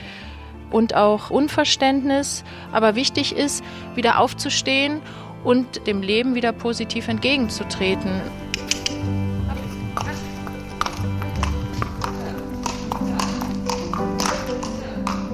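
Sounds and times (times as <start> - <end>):
speech: 0.7 - 9.2
horse hooves clip-clopping on a hard surface in a riding stable courtyard near Cologne: 7.2 - 15.3
steady low hum: 7.5 - 13.7.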